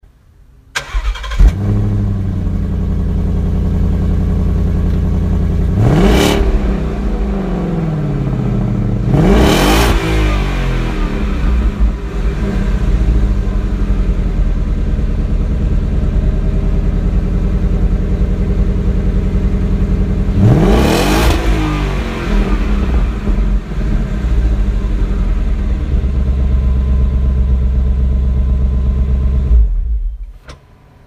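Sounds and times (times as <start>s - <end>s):
Ford Mustang GT California Special exhaust: 1.4s - 30.1s.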